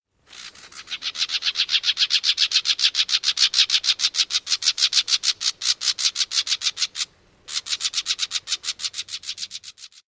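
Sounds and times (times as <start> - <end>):
rattle calls: 0.2 - 10.0.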